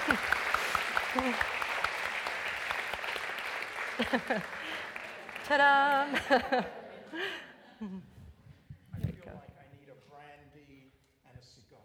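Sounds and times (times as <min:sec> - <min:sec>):
audience applause for a man coming to the stage: 0:00.0 - 0:07.3
speech: 0:01.2 - 0:01.5, 0:04.0 - 0:04.6, 0:05.5 - 0:08.1
laughter: 0:03.8 - 0:08.2.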